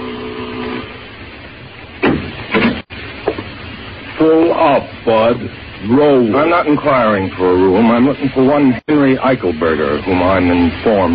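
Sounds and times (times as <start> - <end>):
buzzing doorbell at a hotel manager's door: 0.0 - 1.0
speech: 4.2 - 11.1.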